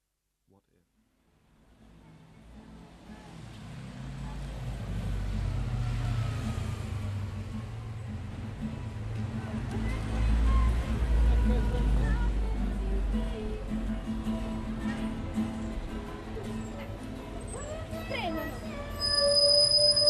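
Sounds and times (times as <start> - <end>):
chatter: 1.7 - 5.2, 8.8 - 20.0
bus engine rumble: 2.4 - 20.0
bus brakes screeching: 17.6 - 20.0.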